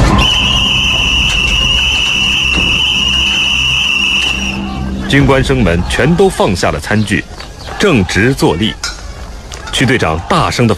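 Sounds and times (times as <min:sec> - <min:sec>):
whistle blown hard by a squad leader at an officer cadets' meal: 0:00.0 - 0:04.9
speech: 0:05.1 - 0:08.8, 0:09.7 - 0:10.7.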